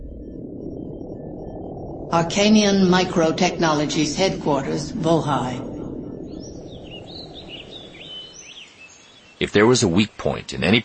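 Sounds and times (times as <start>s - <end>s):
steady noisy outdoor rumble: 0.0s - 8.2s, 9.4s - 10.8s
speech: 2.1s - 5.7s, 9.4s - 10.8s
scarlet hummingbird chirping on a perimeter fence: 6.3s - 10.3s.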